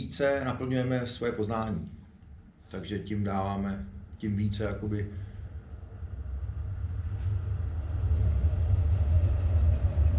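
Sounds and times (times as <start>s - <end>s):
speech: 0.1s - 2.0s, 2.7s - 5.2s
tram rumbling past: 5.6s - 10.1s.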